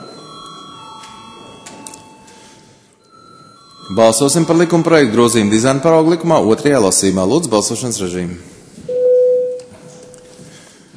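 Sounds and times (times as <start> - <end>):
electric call bell ringing in a parliament chamber before a vote: 0.0 - 6.2
speech: 3.9 - 8.6.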